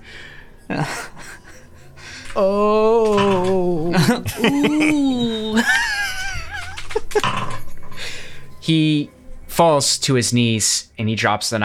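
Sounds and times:
speech: 0:00.7 - 0:01.1, 0:02.4 - 0:02.8, 0:04.0 - 0:05.8, 0:08.7 - 0:11.6
laughter: 0:00.7 - 0:07.4
man's voice imitating a drawn-out pained moan: 0:02.4 - 0:06.8.

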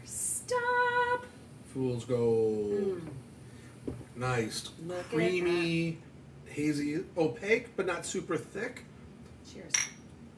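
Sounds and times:
speech: 0:01.8 - 0:03.3, 0:04.2 - 0:08.9, 0:09.5 - 0:09.8
beer glasses clinking in a toast: 0:09.7 - 0:10.1.

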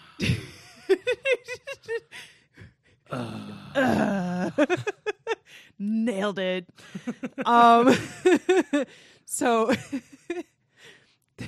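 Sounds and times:
speech: 0:00.2 - 0:00.5, 0:06.2 - 0:10.1
laughter: 0:00.2 - 0:02.2, 0:04.4 - 0:05.5, 0:06.8 - 0:08.9
loud drawn-out yawn with a groaning voice: 0:03.1 - 0:04.4.

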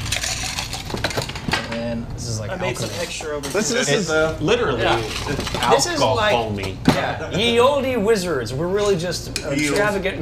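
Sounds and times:
ice clinking as a cocktail with apple and aromatic bitters is stirred: 0:00.0 - 0:01.3
speech: 0:01.9 - 0:10.2.

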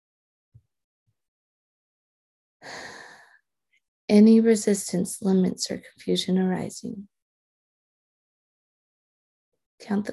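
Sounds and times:
deep breath: 0:02.6 - 0:03.4
speech: 0:04.1 - 0:07.2, 0:09.9 - 0:10.1.

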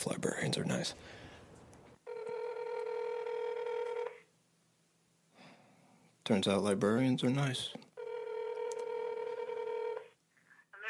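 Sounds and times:
speech: 0:00.0 - 0:01.2, 0:06.3 - 0:07.9
electronic ring tone of a call on a borrowed phone: 0:02.0 - 0:04.2, 0:08.0 - 0:10.2.

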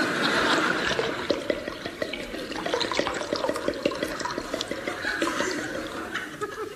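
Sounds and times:
laughter: 0:00.0 - 0:01.2, 0:04.8 - 0:06.7
drink pouring into a glass: 0:00.6 - 0:06.1.

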